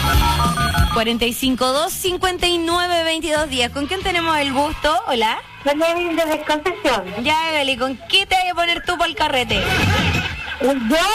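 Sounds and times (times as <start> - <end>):
telephone ringing: 0.0 - 1.4
speech: 1.0 - 11.1
laughter: 8.5 - 11.1.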